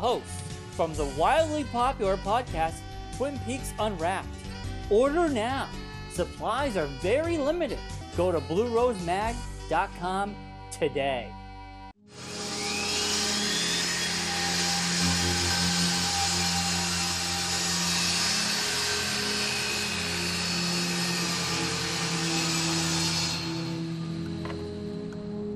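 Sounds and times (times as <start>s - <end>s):
speech: 0.0s - 11.4s
power saw cutting through wood: 12.1s - 24.9s.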